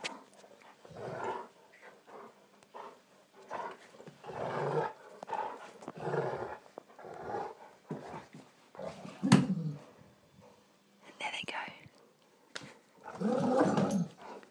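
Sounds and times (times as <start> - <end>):
two dogs growling while playing tug-of-war with a rope: 0.8 - 10.0, 13.0 - 14.4.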